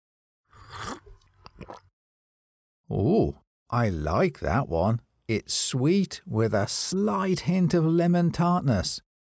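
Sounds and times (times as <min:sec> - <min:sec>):
quiet slurping sip of lemonade from a glass: 0:00.5 - 0:01.9
swallow: 0:00.5 - 0:01.9
small wet mouth clicks: 0:00.6 - 0:01.9
speech: 0:02.9 - 0:09.1.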